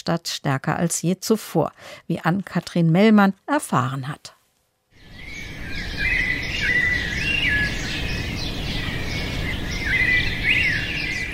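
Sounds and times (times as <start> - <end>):
speech: 0.0 - 4.4
sparrows singing at sunrise: 5.0 - 11.3.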